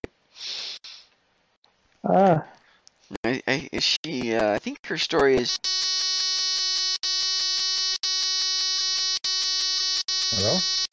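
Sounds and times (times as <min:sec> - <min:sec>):
speech: 0:02.0 - 0:02.6, 0:03.2 - 0:05.9
harsh electronic buzzer bleeping out a spoken word: 0:05.5 - 0:10.9.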